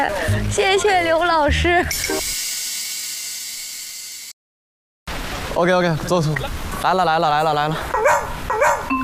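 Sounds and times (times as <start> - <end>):
speech: 0.0 - 2.4, 5.6 - 8.2
dog giving a short sharp bark: 7.9 - 8.9.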